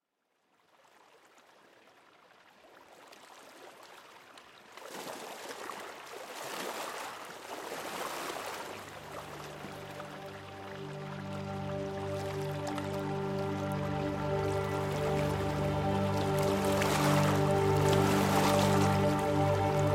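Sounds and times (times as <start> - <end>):
ocean waves: 4.9 - 19.9.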